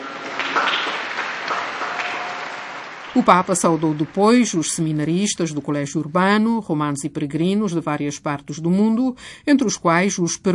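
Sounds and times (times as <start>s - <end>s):
large crowd applauding missionaries: 0.0s - 5.6s
speech: 3.1s - 10.5s.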